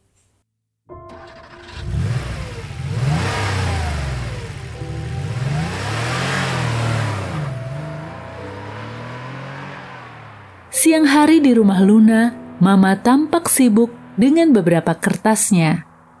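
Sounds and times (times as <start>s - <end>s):
car starting up, revving, accelerating and pulling away: 1.1s - 10.8s
speech: 10.8s - 15.9s.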